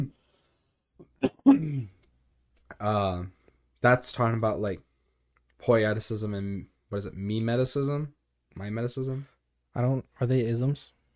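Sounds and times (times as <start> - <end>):
rough voiced throat-clearing: 1.0 - 2.0
sharp cough: 1.0 - 2.0
speech: 1.2 - 1.9, 2.8 - 4.9, 5.6 - 11.0.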